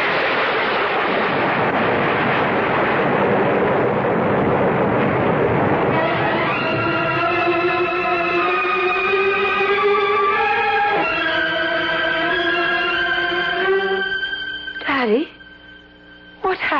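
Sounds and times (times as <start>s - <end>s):
loud sustained roar of a volcanic eruption explosion: 0.0s - 14.2s
lightning bolt striking an iron helmet: 0.0s - 14.4s
steady ringing chord-like drone: 6.0s - 16.4s.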